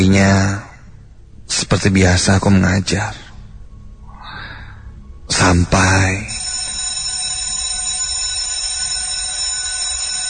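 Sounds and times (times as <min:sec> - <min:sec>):
speech: 0:00.0 - 0:00.7, 0:01.5 - 0:03.2, 0:05.4 - 0:06.3
electric school dismissal bell ringing: 0:06.2 - 0:10.2.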